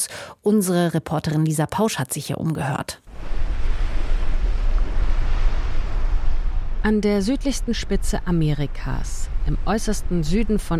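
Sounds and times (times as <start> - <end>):
speech: 0.0 - 3.4, 6.8 - 10.7
strong wind roaring off the Atlantic onto the coast of Tierra del Fuego: 3.1 - 10.7
surf churning on the Atlantic coast of Tierra del Fuego: 3.1 - 10.7.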